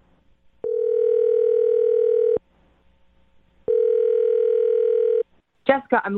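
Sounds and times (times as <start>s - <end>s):
phone ringing tones: 0.6s - 2.4s, 3.7s - 5.2s
speech: 5.8s - 6.1s.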